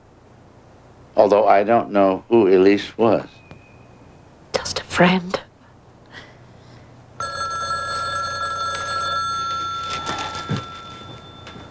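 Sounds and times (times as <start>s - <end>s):
speech: 1.2s - 3.4s, 5.0s - 5.4s
telephone ringing: 7.2s - 11.6s.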